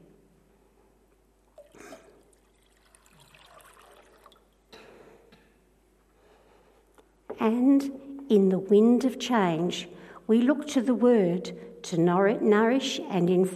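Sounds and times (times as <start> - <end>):
water pouring: 1.5 - 4.7
speech: 7.4 - 13.5.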